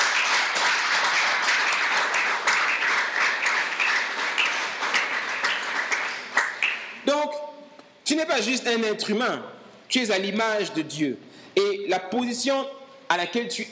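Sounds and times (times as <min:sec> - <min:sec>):
church congregation applauding during a worship service: 0:00.0 - 0:07.1
speech: 0:08.1 - 0:13.7.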